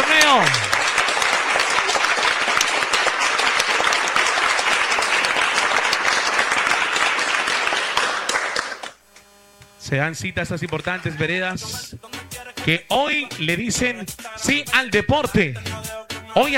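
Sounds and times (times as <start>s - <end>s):
crowd applauding: 0.0s - 9.0s
speech: 0.3s - 0.6s, 9.9s - 15.8s, 16.4s - 16.5s.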